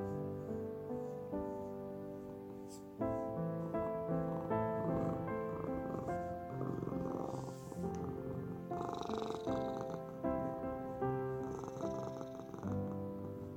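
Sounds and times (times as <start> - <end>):
calm music built from held ringing notes: 0.0 - 13.5
cat's low steady purr: 0.0 - 13.5.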